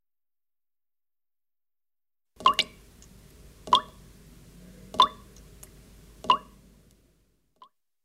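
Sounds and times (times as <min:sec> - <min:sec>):
water dripping: 0:02.4 - 0:07.0.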